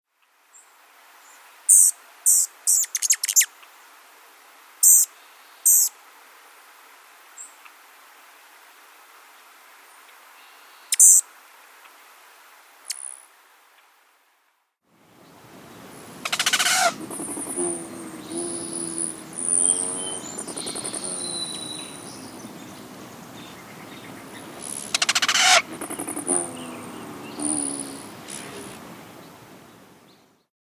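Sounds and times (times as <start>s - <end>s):
rufous hummingbird: 1.6s - 3.5s, 4.8s - 6.0s, 10.4s - 11.2s, 12.8s - 13.2s, 15.6s - 29.4s.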